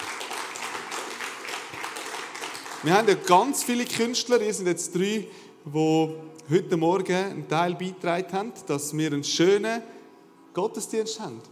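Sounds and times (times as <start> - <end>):
audience applause at a church service: 0.0 - 3.2
speech: 2.8 - 10.0, 10.6 - 11.5.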